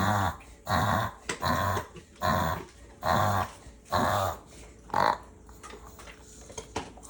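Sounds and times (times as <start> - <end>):
dog reverse sneezing with loud honking snorts: 0.0 - 5.2.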